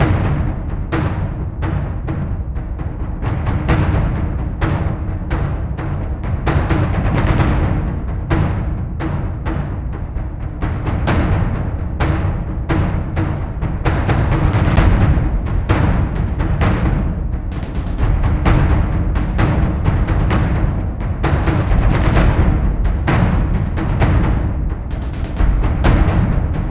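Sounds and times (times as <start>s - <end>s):
epic orchestral war game music loop: 0.0s - 26.6s.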